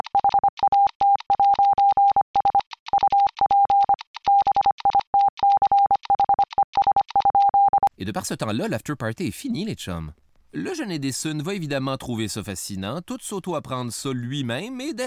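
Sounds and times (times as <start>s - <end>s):
Morse code beeps: 0.0s - 7.9s
speech: 8.0s - 15.0s.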